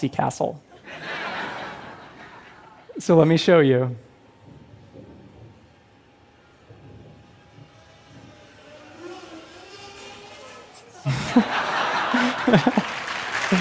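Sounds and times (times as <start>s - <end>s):
speech: 0.0s - 1.1s, 3.0s - 4.0s, 12.5s - 12.9s
laughter: 0.8s - 2.8s, 11.0s - 13.5s
small plane engine humming: 4.7s - 11.4s.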